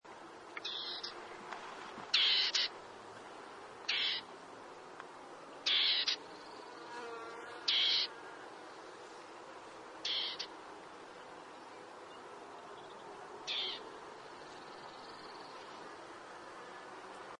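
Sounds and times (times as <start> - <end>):
Dartford warbler singing: 0.6 - 1.2, 2.1 - 2.7, 3.9 - 4.2, 5.6 - 7.0, 7.7 - 8.1, 10.0 - 10.5, 11.5 - 15.8.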